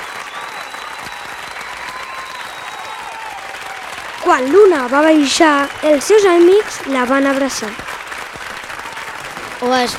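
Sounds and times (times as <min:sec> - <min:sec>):
faint cheer or whistle from the crowd: 0:00.0 - 0:04.6, 0:05.2 - 0:06.6
audience bursting into applause: 0:00.0 - 0:09.9
speech: 0:04.3 - 0:07.9, 0:09.6 - 0:09.9.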